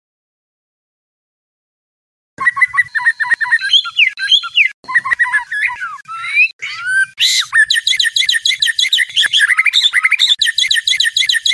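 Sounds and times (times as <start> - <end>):
white-rumped shama song: 2.4 - 11.5.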